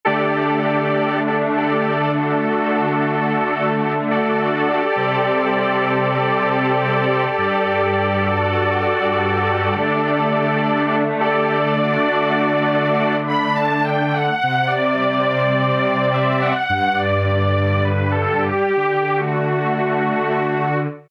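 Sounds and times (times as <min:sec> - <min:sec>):
lo-fi synthesizer strings factory patch: 0:00.1 - 0:21.0.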